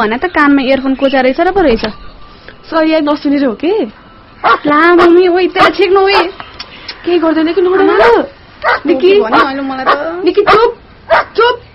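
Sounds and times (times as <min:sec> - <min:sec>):
speech: 0:00.0 - 0:06.4, 0:07.0 - 0:11.6
dog barking indoors near a gate: 0:04.4 - 0:06.3, 0:07.8 - 0:11.7.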